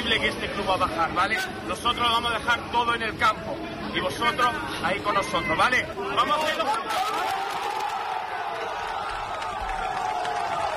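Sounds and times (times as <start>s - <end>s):
speech: 0.1s - 7.6s
large crowd of football supporters applauding and cheering: 7.0s - 10.7s.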